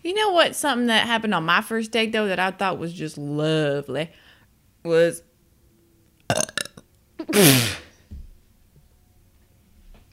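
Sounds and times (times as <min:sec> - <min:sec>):
speech: 0:00.1 - 0:04.2, 0:04.8 - 0:05.3, 0:07.2 - 0:07.8
person burping: 0:06.3 - 0:07.9.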